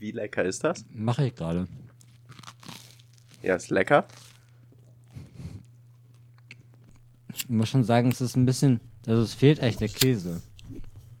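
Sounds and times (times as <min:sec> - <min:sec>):
speech: 0:00.0 - 0:01.8, 0:03.4 - 0:04.3, 0:07.4 - 0:10.8
person biting and chewing a slice of toast: 0:01.9 - 0:03.5, 0:04.1 - 0:07.3.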